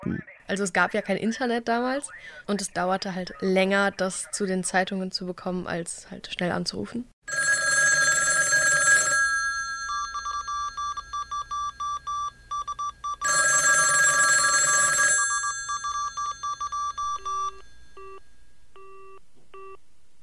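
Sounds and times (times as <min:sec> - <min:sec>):
speech: 0:00.0 - 0:07.6
old telephone bell ringing: 0:07.3 - 0:12.4, 0:13.2 - 0:18.0.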